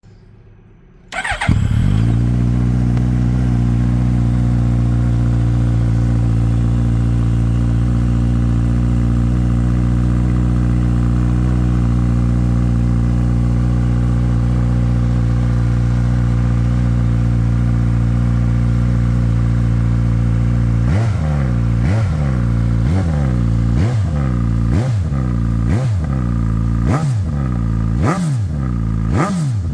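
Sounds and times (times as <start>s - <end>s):
Suzuki GSX-S1000 motorcycle original exhaust system: 1.1s - 29.7s.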